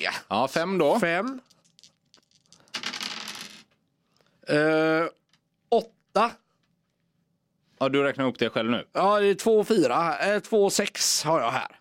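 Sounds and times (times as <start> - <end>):
speech: 0.0 - 1.5, 4.5 - 6.4, 7.8 - 11.7
dice clattering and rattling across a hard tabletop: 1.1 - 3.8.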